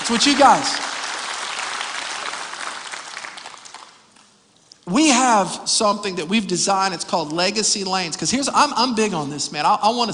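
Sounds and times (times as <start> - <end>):
church audience applause: 0.0 - 4.1
speech: 0.1 - 0.8, 4.9 - 10.1.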